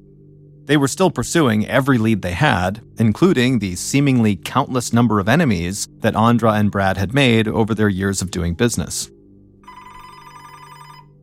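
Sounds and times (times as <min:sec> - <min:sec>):
speech: 0:00.7 - 0:09.2
telephone ringing with a bright electronic trill: 0:09.6 - 0:11.2.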